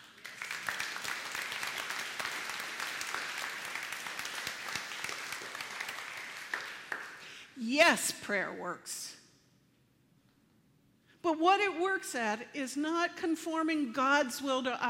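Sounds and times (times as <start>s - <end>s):
large crowd applauding: 0.0s - 7.3s
speech: 7.6s - 9.2s, 11.3s - 14.8s.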